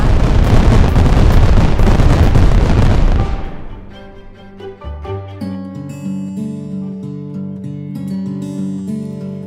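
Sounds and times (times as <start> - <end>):
loud rumbling barrage of explosions: 0.0 - 4.4
gentle melodic music passage: 3.1 - 9.4.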